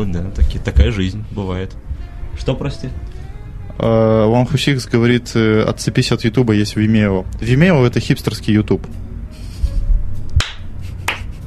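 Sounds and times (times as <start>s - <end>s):
speech: 0.0s - 3.1s, 3.8s - 9.1s
single person clapping hands in applause: 10.4s - 11.4s.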